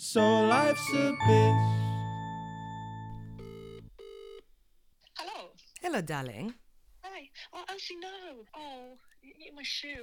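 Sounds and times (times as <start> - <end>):
speech: 0.1 - 1.8, 6.0 - 6.6, 7.8 - 10.0
phone line ringback tone on an outgoing call: 0.7 - 4.4.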